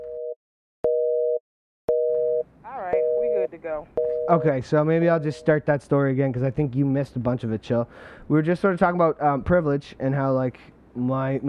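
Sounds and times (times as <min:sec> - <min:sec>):
telephone ringing with electronic tone: 0:00.9 - 0:04.5, 0:05.2 - 0:05.6
speech: 0:03.5 - 0:11.4.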